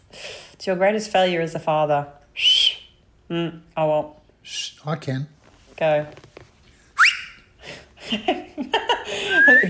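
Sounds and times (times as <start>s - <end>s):
speech: 0.6s - 2.5s, 3.3s - 6.4s, 8.1s - 9.6s
person whistling: 2.4s - 2.9s, 7.0s - 7.4s
laughter: 8.0s - 9.6s.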